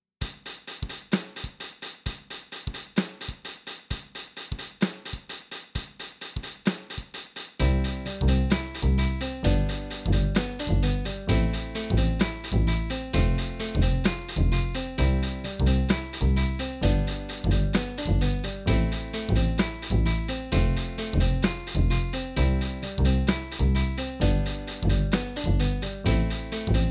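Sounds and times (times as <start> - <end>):
backing music: 7.6 - 26.8.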